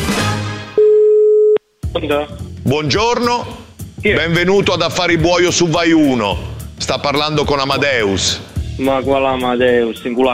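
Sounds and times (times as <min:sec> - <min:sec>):
telephone busy tone after a radio phone-in caller hangs up: 0:00.8 - 0:01.6
speech: 0:02.0 - 0:10.3.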